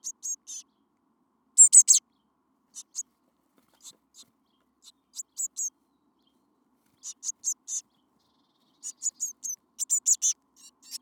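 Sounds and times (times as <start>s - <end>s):
Eurasian blue tit Cyanistes caeruleus chirping calls: 0.0s - 0.6s, 1.6s - 2.0s, 2.8s - 3.0s, 4.8s - 5.7s, 7.0s - 7.8s, 8.8s - 11.0s.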